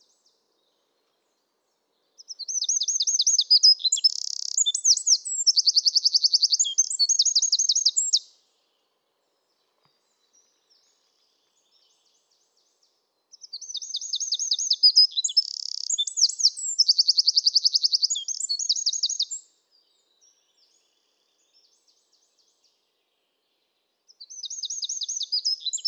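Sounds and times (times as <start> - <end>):
Eurasian wren song, Troglodytes troglodytes: 2.2 - 8.3, 13.3 - 19.5, 24.1 - 25.8.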